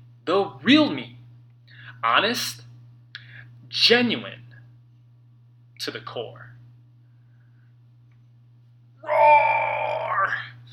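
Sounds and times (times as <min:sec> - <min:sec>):
low steady hum: 0:00.0 - 0:10.7
speech: 0:00.3 - 0:01.1, 0:02.0 - 0:02.6, 0:03.7 - 0:04.4, 0:05.8 - 0:06.4
man imitating a wild animal's primal roar: 0:09.0 - 0:10.5.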